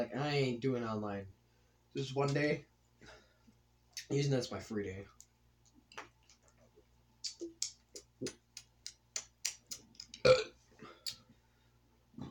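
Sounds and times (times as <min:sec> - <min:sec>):
speech: 0:00.0 - 0:01.4, 0:02.0 - 0:03.2, 0:04.0 - 0:05.2, 0:08.2 - 0:08.4
loud burp after drinking diet soda: 0:10.2 - 0:10.6.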